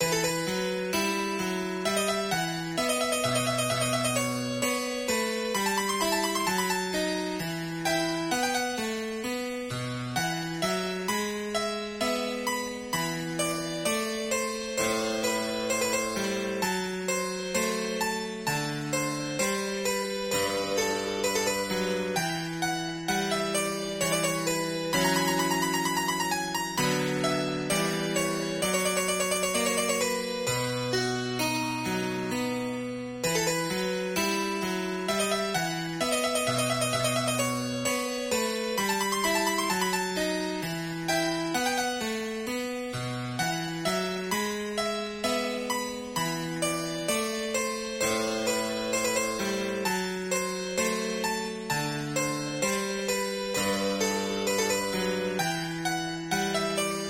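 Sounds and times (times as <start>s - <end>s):
harpsichord piece: 0.0s - 57.0s.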